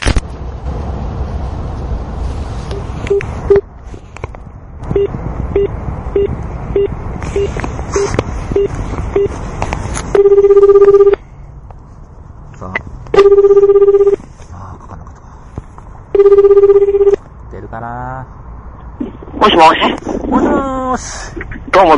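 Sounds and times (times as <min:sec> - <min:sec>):
outgoing phone call ringing tone beeps: 0:04.9 - 0:09.3, 0:10.1 - 0:11.2, 0:13.2 - 0:14.2, 0:16.1 - 0:17.2
speech: 0:19.6 - 0:21.9.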